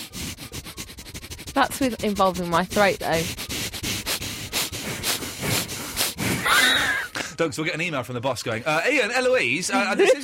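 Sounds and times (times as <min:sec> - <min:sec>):
speech: 0:01.6 - 0:03.4, 0:07.4 - 0:10.2
fluttering snorts forced through the nostrils: 0:04.0 - 0:06.9.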